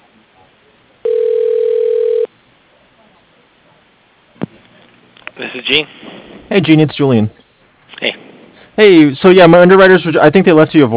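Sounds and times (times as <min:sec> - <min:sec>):
faint phone line hiss: 0:01.0 - 0:02.3
telephone ringback tone while a call is transferred: 0:01.0 - 0:02.3
speech: 0:05.4 - 0:07.4, 0:08.8 - 0:10.9.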